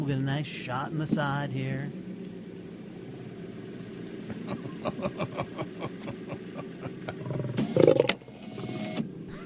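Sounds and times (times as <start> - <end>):
speech: 0.0 - 2.1, 4.5 - 6.1
low steady rumble: 0.0 - 8.5
laughter: 4.3 - 7.3
lion roaring: 7.0 - 8.2.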